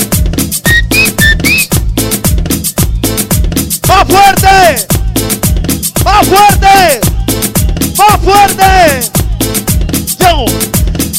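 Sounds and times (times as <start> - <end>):
loud thumping dance music: 0.0 - 11.1
lively crowd whistling at a party event: 0.6 - 1.8.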